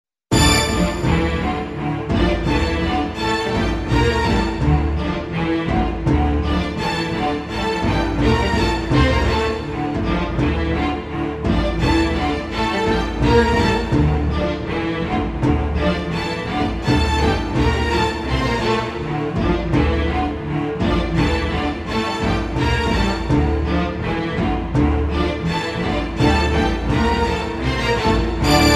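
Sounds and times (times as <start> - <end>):
strings: 0.3 - 28.7
choir singing: 28.4 - 28.7.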